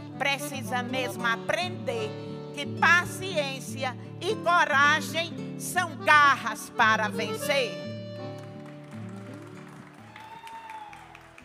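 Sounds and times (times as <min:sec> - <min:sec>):
speech: 0:00.2 - 0:07.9
dense crowd applause: 0:08.2 - 0:11.4.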